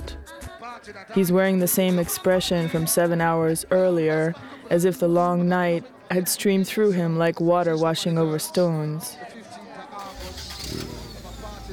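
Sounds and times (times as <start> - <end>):
speech: 0.8 - 9.4
car engine starting and pulling away in the early morning: 10.0 - 11.7.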